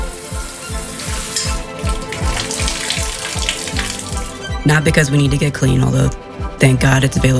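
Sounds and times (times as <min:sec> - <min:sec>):
running water pouring: 0:00.0 - 0:04.6
speech: 0:04.7 - 0:07.3.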